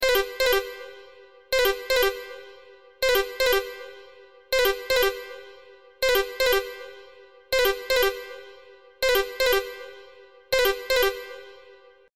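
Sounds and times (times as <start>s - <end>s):
alien phone ringtone: 0.0s - 1.0s, 1.6s - 2.4s, 4.6s - 5.4s, 6.0s - 6.9s, 7.6s - 8.4s, 9.0s - 9.9s, 10.6s - 11.6s.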